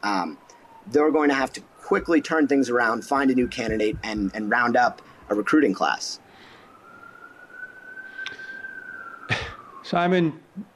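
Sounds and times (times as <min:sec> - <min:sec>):
speech: 0:00.0 - 0:06.2, 0:09.9 - 0:10.7
emergency vehicle siren wailing: 0:00.0 - 0:10.7
soft noisy background: 0:00.9 - 0:05.5.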